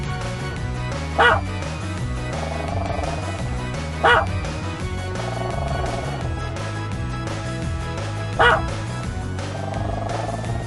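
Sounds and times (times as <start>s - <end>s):
music bed: 0.0s - 10.6s
dog barking: 1.2s - 1.4s, 4.0s - 4.3s, 8.4s - 8.7s.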